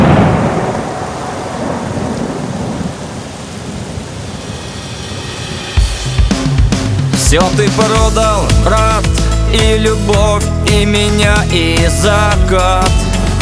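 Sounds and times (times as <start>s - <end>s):
steady rain: 0.0s - 7.1s
rolling thunder: 0.0s - 7.5s
speech: 7.3s - 13.0s.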